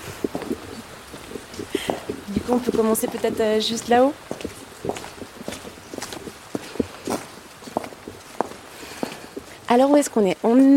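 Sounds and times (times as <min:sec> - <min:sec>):
light rain pattering in a forest: 0:00.0 - 0:10.7
speech: 0:02.5 - 0:04.6, 0:09.7 - 0:10.7.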